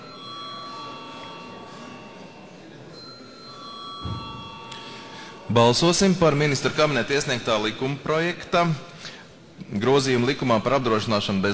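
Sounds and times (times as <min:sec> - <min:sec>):
parliament chamber electric bell ringing: 0:00.0 - 0:07.8
low murmur of many people talking in a large hall: 0:00.0 - 0:11.5
speech: 0:05.5 - 0:08.9, 0:09.7 - 0:11.5.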